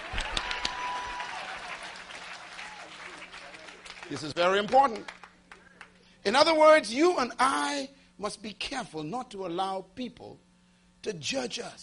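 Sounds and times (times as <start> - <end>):
audience clapping hands: 0.0 - 6.0
speech: 4.1 - 5.2, 6.3 - 10.4, 11.0 - 11.8.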